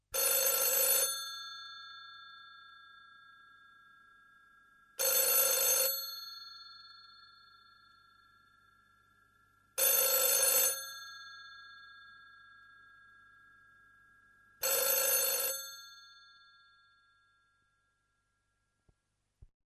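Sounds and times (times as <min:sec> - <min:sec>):
telephone ringing: 0:00.2 - 0:02.7, 0:05.0 - 0:06.9, 0:09.8 - 0:12.2, 0:14.6 - 0:16.1.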